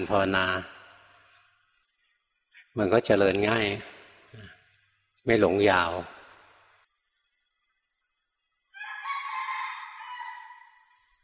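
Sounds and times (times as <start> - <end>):
speech: 0.0 - 0.8, 2.8 - 4.5, 5.2 - 6.2
rooster crowing: 8.7 - 11.2.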